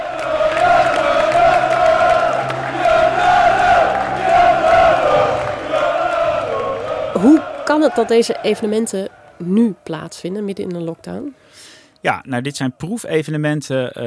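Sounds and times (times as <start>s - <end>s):
football supporters in a stadium singing and chanting in unison: 0.0s - 10.6s
speech: 7.2s - 14.0s.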